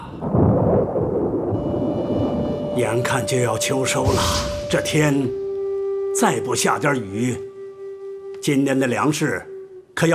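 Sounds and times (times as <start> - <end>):
thunder rumbling before rain: 0.0 - 6.9
speech: 2.8 - 5.4, 6.2 - 7.5, 8.4 - 10.1.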